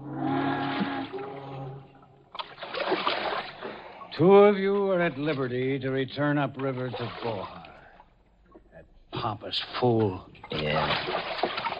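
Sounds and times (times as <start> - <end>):
sustained tonal hum: 0.0 - 2.3
canoe paddle dipping and splashing through river water: 0.2 - 4.1, 6.5 - 8.0, 9.5 - 11.7
speech: 4.2 - 7.6, 9.2 - 11.7.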